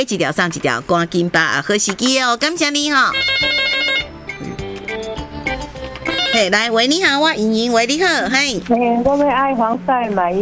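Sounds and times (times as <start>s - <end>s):
speech: 0.0s - 3.8s, 6.3s - 10.4s
telephone melodic electronic ringtone: 2.7s - 7.8s.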